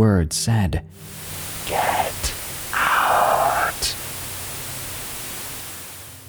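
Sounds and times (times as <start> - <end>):
speech: 0.0 - 2.9
faint low hum: 0.7 - 6.2
TV static hissing: 0.9 - 6.2.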